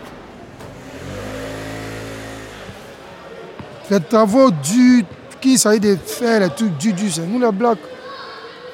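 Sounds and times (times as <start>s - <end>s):
faint street noise: 0.0s - 8.7s
delivery motorbike engine revving: 0.4s - 3.2s
speech: 3.9s - 8.0s.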